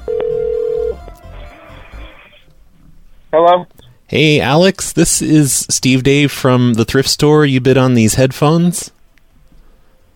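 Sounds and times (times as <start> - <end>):
ringback tone from an outgoing phone call: 0.0 - 1.0
speech: 3.3 - 9.0.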